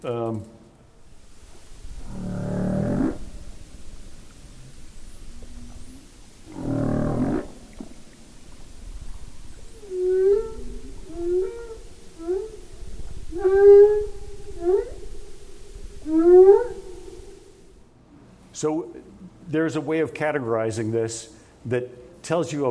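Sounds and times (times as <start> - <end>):
speech: 0.0 - 0.6, 18.6 - 22.6
soft underwater hiss: 0.8 - 20.0
humpback whale song: 1.0 - 17.9.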